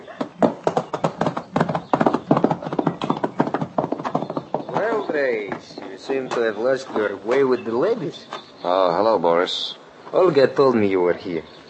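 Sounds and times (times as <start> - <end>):
horse hooves clip-clopping: 0.0 - 8.5
speech: 5.2 - 11.6.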